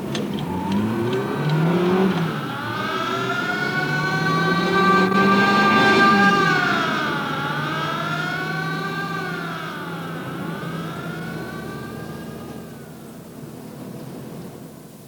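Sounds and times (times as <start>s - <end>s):
car engine roaring as it speeds off: 0.0s - 14.9s.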